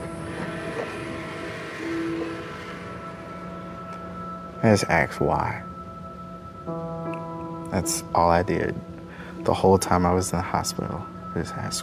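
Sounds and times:
freight train brief tonal squeal: 0.0s - 5.1s
speech: 4.6s - 5.7s, 6.7s - 6.9s, 7.7s - 11.8s.

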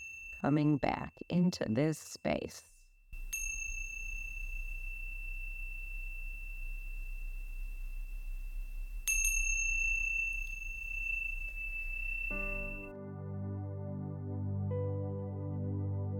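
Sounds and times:
meditation chime ringing: 0.0s - 1.2s, 3.2s - 12.9s
speech: 0.4s - 2.7s
low hum: 3.2s - 12.9s
soft melodic music: 11.6s - 16.1s.

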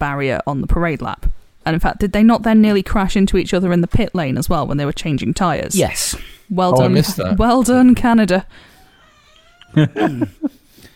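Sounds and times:
speech: 0.0s - 8.7s, 9.7s - 10.6s
laughter: 6.7s - 7.4s, 9.8s - 10.6s
cat meowing with a drawn-out wavering meow and chirp-like call: 8.8s - 10.0s.

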